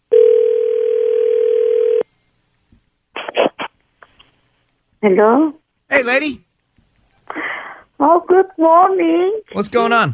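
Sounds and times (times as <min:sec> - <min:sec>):
telephone dial tone: 0:00.1 - 0:02.0
speech: 0:05.0 - 0:06.4, 0:08.0 - 0:10.1.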